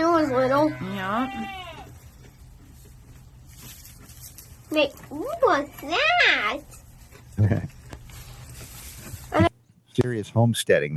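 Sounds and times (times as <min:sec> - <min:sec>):
goat bleating: 0:00.0 - 0:02.0
speech: 0:00.3 - 0:01.7, 0:04.7 - 0:06.8, 0:07.4 - 0:07.7, 0:09.3 - 0:10.9.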